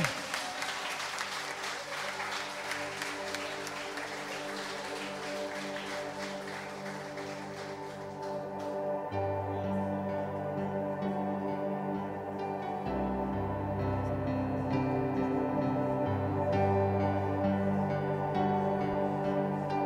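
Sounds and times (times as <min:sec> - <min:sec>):
audience applauding: 0:00.0 - 0:09.0
sustained musical tones: 0:02.1 - 0:19.8.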